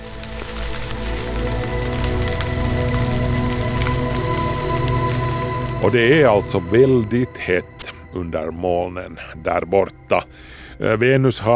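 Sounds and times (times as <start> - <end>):
steady rain: 0.0 - 11.5
low droning hum: 1.4 - 9.2
speech: 5.8 - 11.5.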